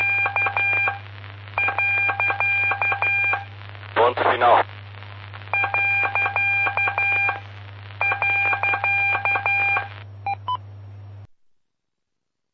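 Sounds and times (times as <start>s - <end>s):
steady low electrical hum: 0.0s - 12.4s
Morse code telegraphy beeps: 1.6s - 3.4s, 5.6s - 7.4s, 8.0s - 10.6s
speech: 4.4s - 4.7s.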